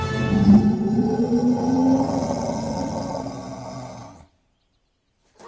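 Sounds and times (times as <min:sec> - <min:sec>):
deep rough animal roar with growls and bellow: 0:00.2 - 0:04.3.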